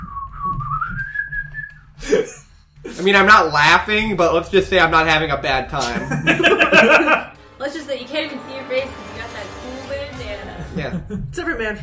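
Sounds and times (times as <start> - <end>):
person whistling a short wavering melody: 0.0 - 1.9
speech: 3.0 - 9.6, 10.8 - 11.8
laughter: 5.8 - 7.3, 10.5 - 11.2.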